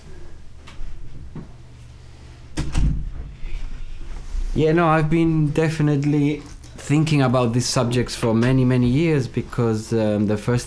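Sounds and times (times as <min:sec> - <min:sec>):
door pushed shut with a solid thud and low boom: 0:02.5 - 0:03.4
speech: 0:04.6 - 0:10.6.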